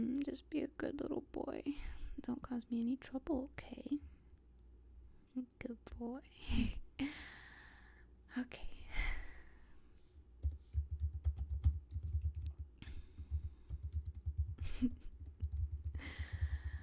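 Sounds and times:
speech: 0.0 - 4.1, 5.4 - 7.4, 8.3 - 8.8
faint low hum: 0.0 - 16.8
soft typing on a computer keyboard: 10.4 - 16.8.

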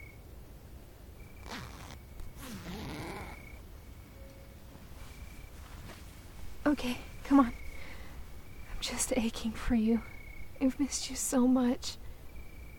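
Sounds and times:
low steady hum: 0.0 - 12.7
dress zipper being undone: 1.4 - 3.6
speech: 6.7 - 7.6, 8.8 - 12.0.

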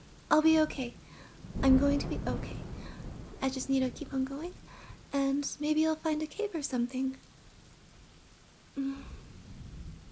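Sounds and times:
steady soft rain hissing and pattering: 0.0 - 10.1
speech: 0.3 - 1.0, 1.6 - 2.6, 3.4 - 7.3, 8.8 - 9.2
person sighing or whimpering: 8.8 - 9.3.

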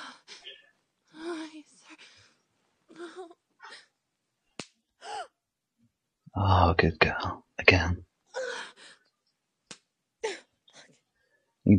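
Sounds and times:
hand slapping skin: 4.5 - 4.8, 9.6 - 9.9
speech: 6.4 - 8.1.

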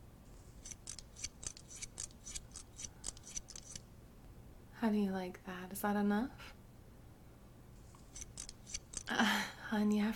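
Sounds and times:
scissors snipping hair: 0.6 - 3.8, 8.0 - 9.2
speech: 4.8 - 6.6, 9.7 - 10.1.

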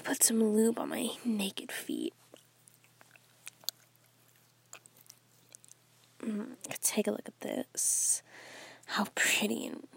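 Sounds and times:
faint steady hum: 0.0 - 9.9
speech: 0.1 - 2.3, 6.2 - 9.9
chewing on nylon stockings: 2.1 - 6.2.

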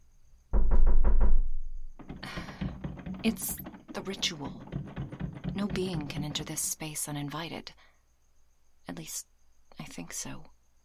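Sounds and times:
heavy knocks on a door: 0.6 - 6.8
speech: 3.2 - 4.9, 5.6 - 7.8, 8.9 - 10.5.

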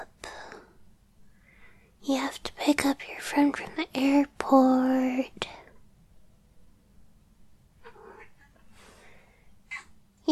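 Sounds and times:
speech: 2.3 - 5.6
cat meowing: 7.8 - 8.6.

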